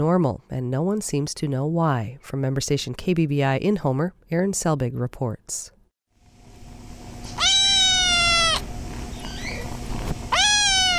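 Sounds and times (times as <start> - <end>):
speech: 0.0 - 5.8
kittens meowing: 7.4 - 9.7, 10.3 - 10.9.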